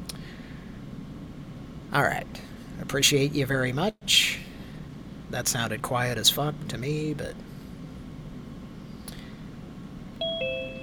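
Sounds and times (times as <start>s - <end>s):
speech: 1.9s - 4.2s, 5.3s - 7.5s
8-bit style electronic doorbell beep tones: 10.2s - 10.8s.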